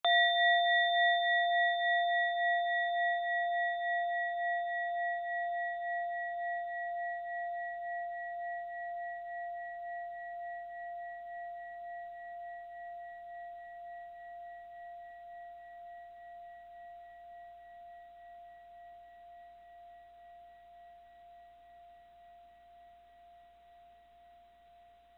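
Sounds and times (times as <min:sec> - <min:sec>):
small bell: 0:00.0 - 0:18.6.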